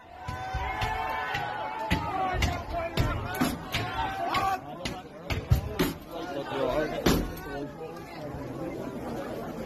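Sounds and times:
agitated crowd shouting and talking: 0.0s - 9.6s
house doors being pounded and kicked by rioters: 0.1s - 6.1s.

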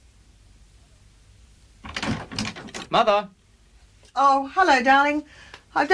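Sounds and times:
door opening with scrape and rattle: 1.8s - 3.2s
speech: 2.9s - 3.4s, 4.2s - 5.9s.

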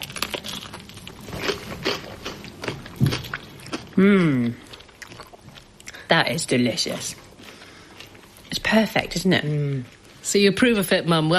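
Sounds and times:
person biting into and chewing a homemade dish: 0.0s - 6.1s, 7.0s - 10.2s
speech: 4.0s - 4.7s, 6.1s - 7.2s, 8.7s - 11.3s.

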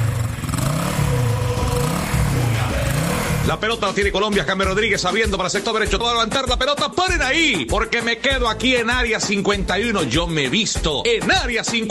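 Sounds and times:
motorcycle engine revving: 0.0s - 4.0s
speech: 3.5s - 11.8s.

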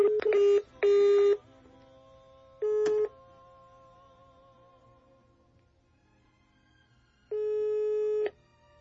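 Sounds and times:
electronic phone tones from a call to a switched-off cellphone: 0.0s - 1.4s, 2.6s - 3.1s, 7.3s - 8.4s.

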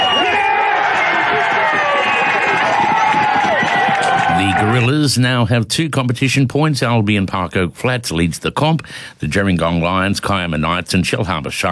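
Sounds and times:
home crowd roaring and cheering after winning try: 0.0s - 4.9s
speech: 4.8s - 11.7s.

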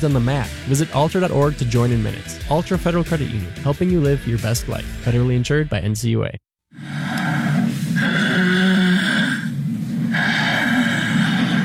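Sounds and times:
speech: 0.0s - 6.9s
loud rough snoring with rattling breaths: 6.8s - 11.6s.

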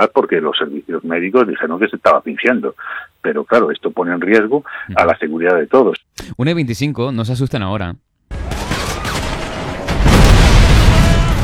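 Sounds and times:
speech: 0.0s - 8.1s
constant noise: 0.0s - 11.4s
loud explosion with sustained low rumble: 8.3s - 11.4s.

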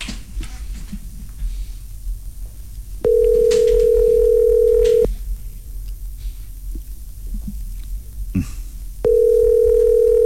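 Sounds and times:
low hum: 0.0s - 10.2s
ringback tone of a phone call waiting for an answer: 3.0s - 5.1s, 9.1s - 10.2s
faint clicks: 3.1s - 4.1s, 4.7s - 5.1s.

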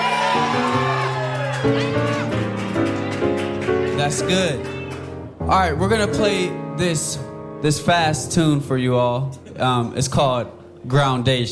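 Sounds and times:
live audience screaming and hollering: 0.0s - 5.2s
speech: 1.6s - 2.4s, 4.0s - 4.8s, 5.5s - 11.4s.

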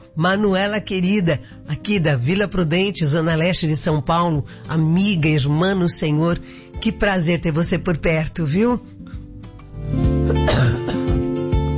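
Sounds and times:
speech: 0.2s - 9.2s
person coughing with a rough throaty quality: 10.2s - 11.2s
raspy throat-clearing: 10.2s - 11.2s.

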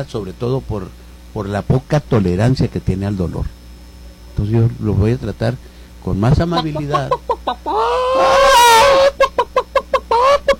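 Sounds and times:
speech: 0.0s - 3.6s, 4.4s - 8.4s
hen cackling after laying an egg: 6.4s - 10.5s.

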